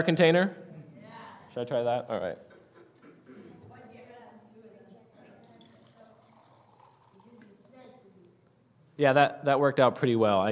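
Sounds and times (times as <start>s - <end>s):
speech: 0.0s - 0.6s, 1.6s - 2.5s, 9.0s - 10.5s
water pouring into a cup: 5.4s - 7.7s.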